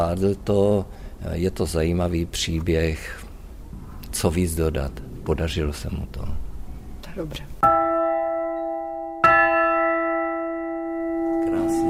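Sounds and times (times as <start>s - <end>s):
speech: 0.0s - 3.3s, 4.1s - 6.4s, 7.2s - 7.8s
large bell ringing: 7.6s - 11.8s.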